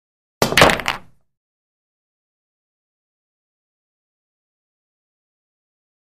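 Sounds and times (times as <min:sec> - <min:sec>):
billiard ball hit: 0:00.4 - 0:01.2.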